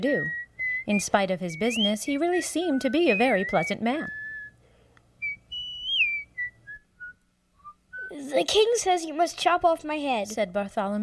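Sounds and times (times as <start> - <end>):
speech: 0.0 - 4.2, 8.3 - 11.0
man whistling a tune: 0.2 - 4.6, 5.2 - 8.2.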